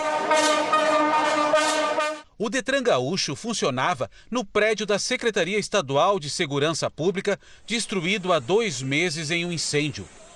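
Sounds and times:
car horns honking in a protest by traffic department workers in Rio Grande do Sul: 0:00.0 - 0:02.3
speech: 0:02.4 - 0:10.2.

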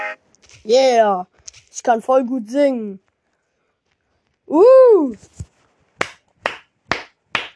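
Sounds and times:
speech: 0:00.6 - 0:03.0, 0:04.5 - 0:05.5
single pair of hands clapping: 0:06.0 - 0:07.5.

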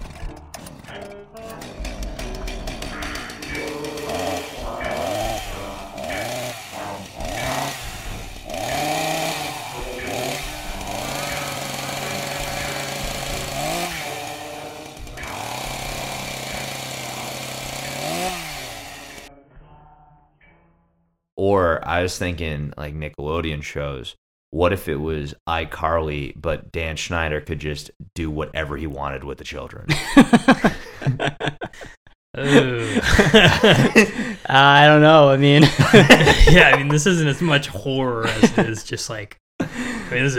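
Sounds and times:
chainsaw revving: 0:01.6 - 0:19.3, 0:33.1 - 0:34.3, 0:35.7 - 0:37.0
speech: 0:21.5 - 0:40.3
laughter: 0:29.9 - 0:34.5, 0:35.4 - 0:39.0, 0:39.6 - 0:40.3.

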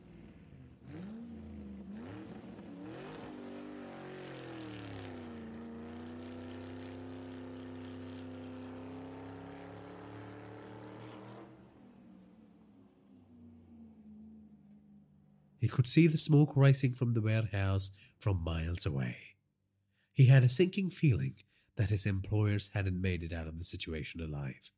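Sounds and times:
car engine revving and accelerating: 0:00.0 - 0:15.5
speech: 0:15.6 - 0:19.2, 0:20.2 - 0:24.7.

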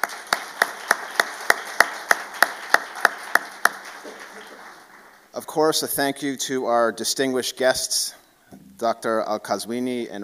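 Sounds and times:
audience applause: 0:00.0 - 0:05.3
speech: 0:05.5 - 0:08.2, 0:08.8 - 0:10.2.

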